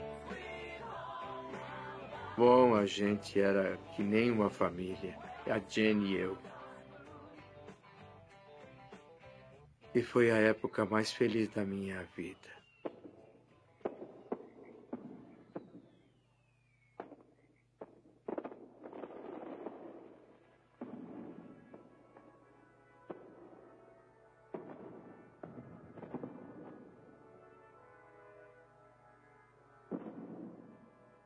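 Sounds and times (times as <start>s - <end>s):
speech: 2.4s - 6.6s, 10.0s - 12.6s
fireworks display pops and booms on the Fourth of July at New York: 12.6s - 27.2s, 29.9s - 31.2s.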